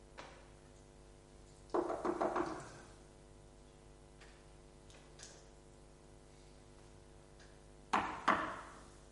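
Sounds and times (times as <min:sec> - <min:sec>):
low steady hum: 0:00.0 - 0:09.0
knocking on a door: 0:01.8 - 0:02.7.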